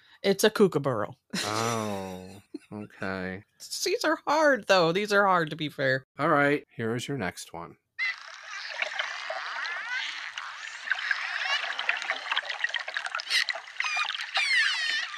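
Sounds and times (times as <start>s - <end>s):
speech: 0.2s - 8.1s
dolphin chirping and whistling: 8.0s - 15.1s
water washing: 8.2s - 15.1s.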